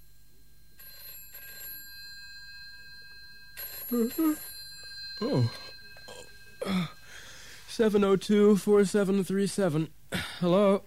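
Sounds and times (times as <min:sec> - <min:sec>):
telephone ringing: 0:00.7 - 0:08.7
speech: 0:03.9 - 0:04.5, 0:05.2 - 0:05.8, 0:07.8 - 0:10.8.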